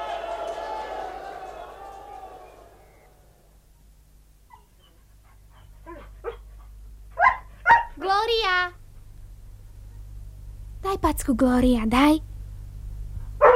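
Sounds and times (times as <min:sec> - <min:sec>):
dogs barking and yelping: 0:04.5 - 0:08.0, 0:13.4 - 0:13.5
speech: 0:10.9 - 0:12.3.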